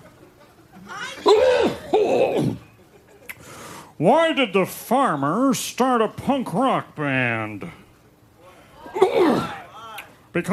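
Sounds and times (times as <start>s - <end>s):
harsh throaty coughs into a microphone: 1.2s - 2.7s, 9.0s - 9.6s
speech: 4.0s - 7.8s.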